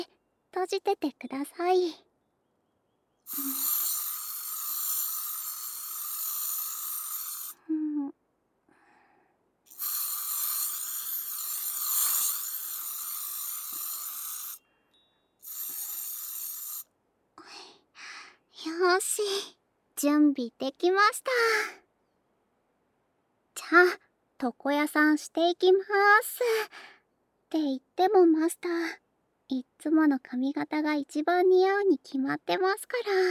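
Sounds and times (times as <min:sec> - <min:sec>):
speech: 0:00.0 - 0:02.1, 0:03.3 - 0:03.7, 0:19.4 - 0:21.8, 0:23.7 - 0:26.9, 0:27.5 - 0:33.2
anti-static spray hissing: 0:03.3 - 0:07.6, 0:09.7 - 0:14.6, 0:15.4 - 0:16.8.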